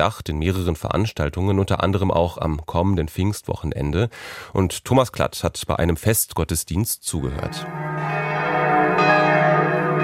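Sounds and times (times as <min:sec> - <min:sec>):
speech: 0:00.0 - 0:07.9
large church bells ringing at a church in northwestern Berlin: 0:07.5 - 0:10.0.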